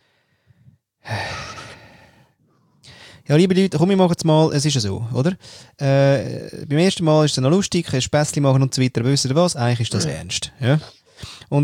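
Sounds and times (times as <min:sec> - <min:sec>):
heavy deliberate breathing: 0:00.0 - 0:03.3, 0:05.4 - 0:05.8, 0:10.9 - 0:11.5
speech: 0:03.3 - 0:11.6.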